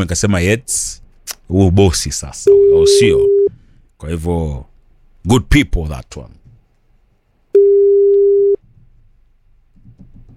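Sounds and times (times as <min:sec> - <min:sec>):
speech: 0:00.0 - 0:03.4, 0:04.0 - 0:06.4
faint low noise: 0:00.0 - 0:10.3
telephone ringing tone: 0:07.6 - 0:08.6.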